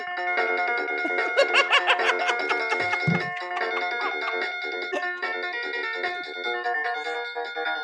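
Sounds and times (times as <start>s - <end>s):
electronic keyboard demo tune with synthetic melody and layered chords: 0.0s - 7.8s
child giggling: 1.1s - 5.3s.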